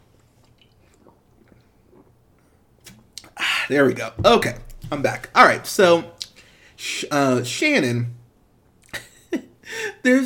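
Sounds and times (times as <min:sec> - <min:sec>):
person sipping a beer: 0:00.2 - 0:03.4
faint swallows: 0:00.4 - 0:02.2
speech: 0:03.7 - 0:06.2, 0:06.8 - 0:08.2, 0:10.0 - 0:10.2.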